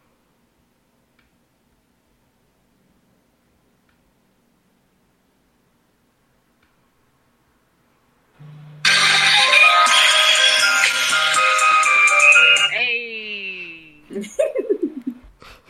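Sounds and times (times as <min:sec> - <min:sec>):
loud dense electronic timer alarm: 0:08.8 - 0:12.8
bursts of laughter: 0:14.2 - 0:15.3.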